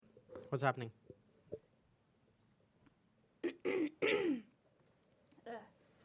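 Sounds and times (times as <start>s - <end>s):
speech: 0.4s - 1.0s
person clearing throat of food phlegm: 3.4s - 4.5s.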